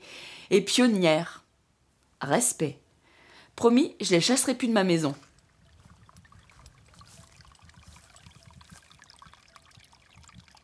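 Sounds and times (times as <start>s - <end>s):
speech: 0.5s - 1.4s, 2.2s - 2.8s, 3.6s - 5.3s
water trickling and gurgling in a small resurgence stream: 4.8s - 10.6s.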